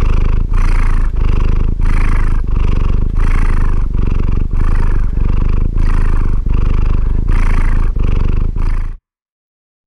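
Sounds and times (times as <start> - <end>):
cat purr, low and rumbling: 0.0 - 9.0.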